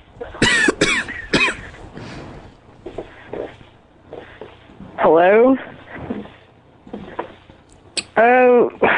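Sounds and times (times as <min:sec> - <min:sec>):
sharp harsh coughs: 0:00.4 - 0:01.8
soft breathy sounds: 0:01.6 - 0:04.6
speech: 0:08.2 - 0:08.4.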